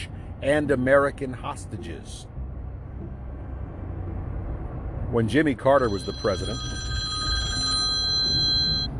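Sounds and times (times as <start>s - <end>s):
speech: 0.4s - 2.4s, 5.1s - 7.0s
telephone ringing with a bright electronic tone: 5.8s - 8.9s.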